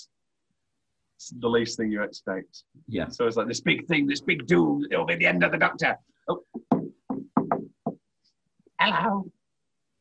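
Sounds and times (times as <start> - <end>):
speech: 1.3 - 6.7, 8.8 - 9.4
hollow knocks on a door: 6.5 - 8.1.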